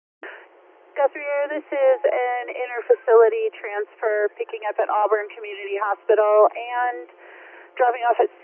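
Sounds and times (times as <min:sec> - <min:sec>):
radio static clicks and squelch bursts: 0:01.0 - 0:07.1, 0:07.8 - 0:08.4
speech: 0:03.3 - 0:08.4.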